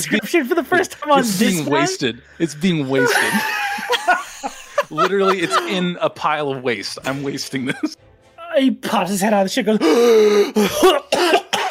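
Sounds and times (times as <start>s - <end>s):
speech: 0.0s - 4.0s, 4.9s - 11.4s
laughter: 2.8s - 6.2s
voice imitating hacking something up: 10.6s - 11.6s.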